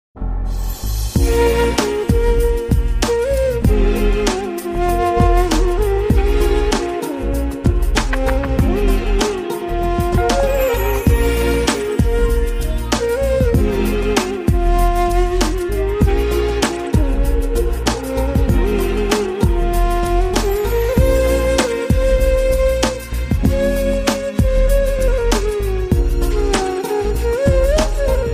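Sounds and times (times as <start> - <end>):
sad flute ringtone melody: 1.2 - 28.3.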